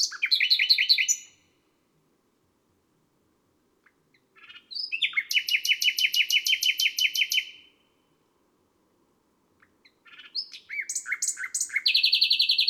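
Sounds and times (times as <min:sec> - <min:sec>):
nightingale singing on a May night: 0:00.0 - 0:01.6, 0:03.8 - 0:08.2, 0:09.6 - 0:12.6.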